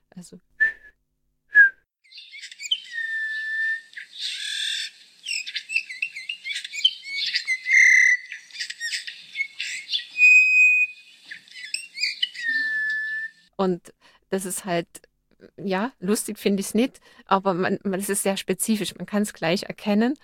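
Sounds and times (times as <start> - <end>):
speech: 0.2 - 0.6, 13.6 - 15.0, 15.6 - 20.2
Eurasian bullfinch piping whistles: 1.6 - 13.5.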